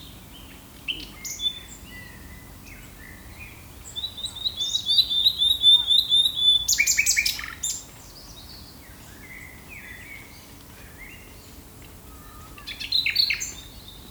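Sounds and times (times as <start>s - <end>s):
common nightingale singing: 4.2s - 7.4s.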